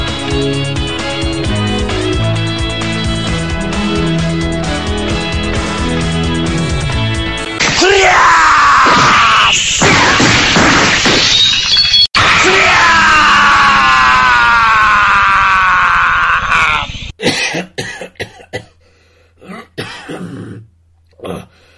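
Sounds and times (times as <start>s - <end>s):
upbeat anime opening theme music: 0.0s - 7.6s
two girls screaming loudly and shrilly: 7.8s - 9.6s, 12.3s - 16.9s
noisy crashing backdrop: 8.8s - 12.5s.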